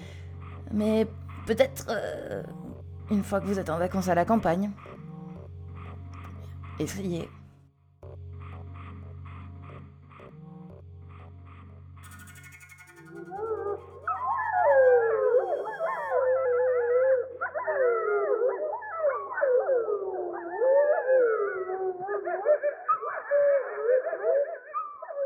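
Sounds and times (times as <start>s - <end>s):
speech: 0.7s - 4.9s, 6.8s - 7.4s
chorus of wolves howling in response to playback: 12.8s - 25.2s.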